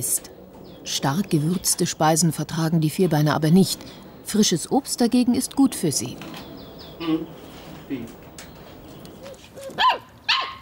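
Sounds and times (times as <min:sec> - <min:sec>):
speech: 0:00.0 - 0:08.2
dog barking and yelping: 0:09.3 - 0:10.6.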